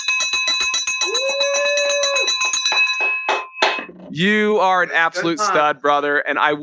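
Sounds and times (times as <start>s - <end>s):
handheld school recess bell rung as a victory bell: 0.0s - 3.9s
laughter: 4.0s - 6.0s
speech: 4.2s - 6.6s.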